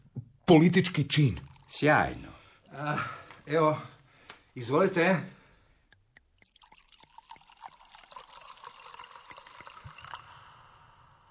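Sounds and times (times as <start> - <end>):
speech: 0.5 - 3.9, 4.6 - 5.4
wine pouring into glasses: 1.2 - 2.3, 6.4 - 11.2.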